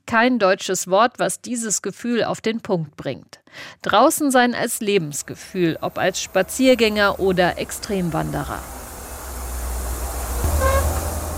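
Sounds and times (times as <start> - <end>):
speech: 0.1 - 8.8
train running at moderate speed through landscape around the Arctic Circle: 5.0 - 11.3.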